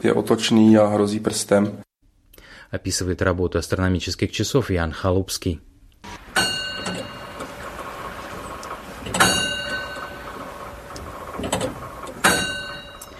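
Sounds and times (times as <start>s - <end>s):
speech: 0.0s - 1.9s, 2.7s - 6.2s
heavy metallic clunks of astronomical clock mechanism being wound with a lever: 6.1s - 13.1s.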